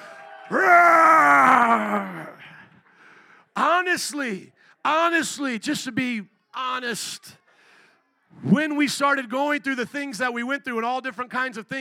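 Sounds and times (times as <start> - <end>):
audience roaring like lions: 0.0 - 2.4
speech: 4.0 - 7.4, 8.3 - 11.7.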